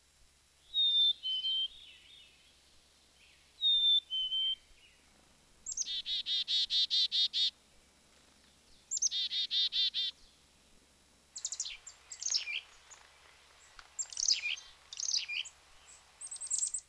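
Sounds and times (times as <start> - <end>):
black-capped chickadee calls: 0.6 - 2.5, 3.2 - 5.0, 5.6 - 7.6, 8.7 - 10.4, 11.4 - 16.8.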